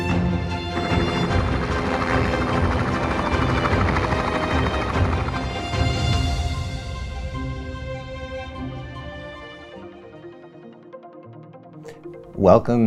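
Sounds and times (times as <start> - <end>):
helicopter rotor and engine taking off or landing at a helicopter base: 0.2 - 7.4
speech: 12.4 - 12.8.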